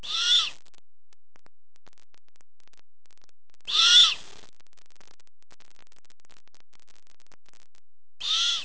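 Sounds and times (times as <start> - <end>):
Great Horned owl begging calls: 0.0 - 0.6, 3.7 - 4.2, 8.2 - 8.6.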